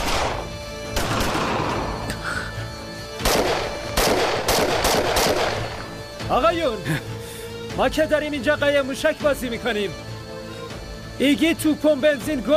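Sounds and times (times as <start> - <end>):
loud gunfire bursts with lingering echo: 0.0 - 2.1, 3.2 - 5.8
speech: 6.3 - 7.1, 7.8 - 10.0, 11.2 - 12.5.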